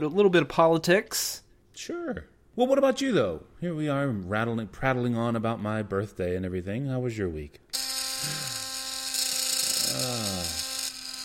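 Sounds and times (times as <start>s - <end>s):
speech: 0.0s - 8.4s
steady electric buzzing: 7.7s - 11.2s.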